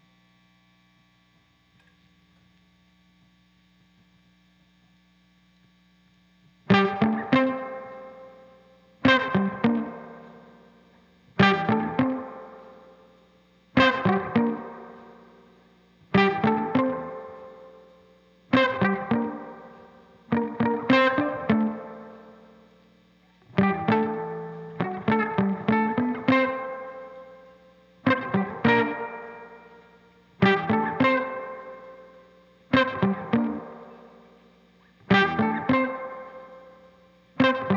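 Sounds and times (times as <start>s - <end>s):
guitar rhythm: 6.7s - 8.4s, 9.0s - 10.8s, 11.4s - 13.0s, 13.8s - 17.9s, 18.5s - 22.6s, 23.4s - 34.4s, 35.0s - 37.7s.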